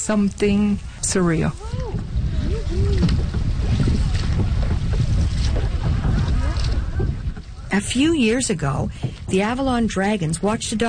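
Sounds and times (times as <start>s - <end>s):
speech: 0.0s - 1.7s, 7.7s - 10.8s
constant low rumble of a boat on open water: 0.0s - 10.8s
steady wind buffeting the microphone on open water: 0.0s - 10.8s
water splashing around a boat on open water: 0.0s - 10.8s.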